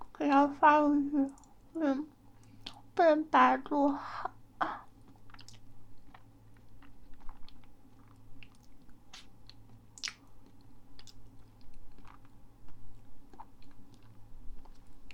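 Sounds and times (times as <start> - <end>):
low constant hum: 0.0 - 15.1
speech: 0.2 - 2.1, 3.0 - 4.7
person eating and chewing food: 2.3 - 2.9, 4.6 - 15.1.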